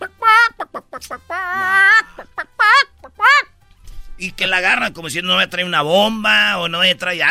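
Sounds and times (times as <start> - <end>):
chicken clucking: 0.0 - 3.5
speech: 4.3 - 7.2.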